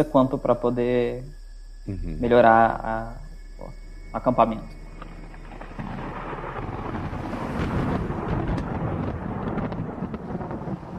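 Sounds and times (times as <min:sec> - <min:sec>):
speech: 0:00.0 - 0:04.8
thunder from an approaching storm: 0:04.2 - 0:10.9
storm wind gusting against the microphone: 0:04.7 - 0:10.9.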